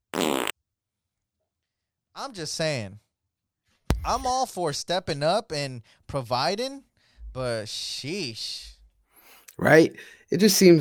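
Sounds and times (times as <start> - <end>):
fart sound effect: 0.0 - 0.5
speech: 2.2 - 3.0, 4.0 - 8.7, 9.6 - 10.7.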